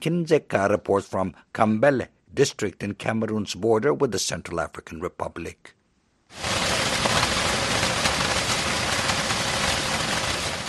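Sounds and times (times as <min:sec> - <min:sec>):
speech: 0:00.0 - 0:06.7
heavy rain pouring in Kambele Cameroon: 0:06.3 - 0:10.6.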